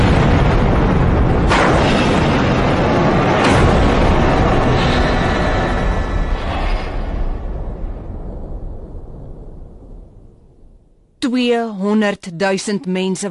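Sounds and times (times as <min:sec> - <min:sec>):
sharp blasts: 0:00.0 - 0:07.8
nuclear reactor explosion rumbling: 0:00.0 - 0:11.2
speech: 0:11.4 - 0:13.2.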